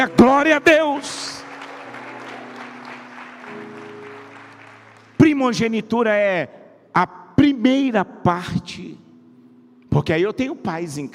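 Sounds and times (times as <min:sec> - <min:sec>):
speech: 0:00.0 - 0:01.4, 0:05.4 - 0:09.0, 0:10.0 - 0:11.1
church audience clapping: 0:00.0 - 0:05.7.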